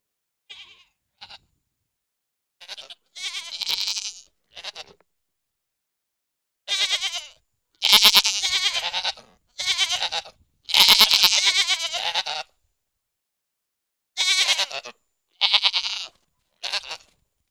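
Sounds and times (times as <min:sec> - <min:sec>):
pygmy goat bleating: 0:00.5 - 0:01.5, 0:02.6 - 0:05.0, 0:06.7 - 0:12.5, 0:14.2 - 0:17.2.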